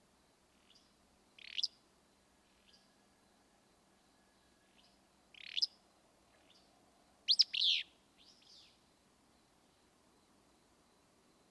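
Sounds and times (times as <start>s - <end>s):
willow flycatcher song: 0.6s - 1.8s, 4.7s - 5.8s, 7.3s - 8.8s.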